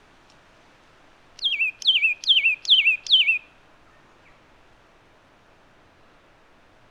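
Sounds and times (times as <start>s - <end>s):
Myiagra cyanoleuca satin flycatcher calling two whistled notes: 1.4s - 3.4s.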